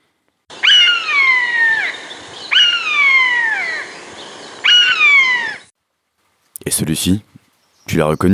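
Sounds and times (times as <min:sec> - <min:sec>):
common buzzard mewing calls: 0:00.5 - 0:05.7
speech: 0:06.7 - 0:07.3, 0:07.9 - 0:08.3.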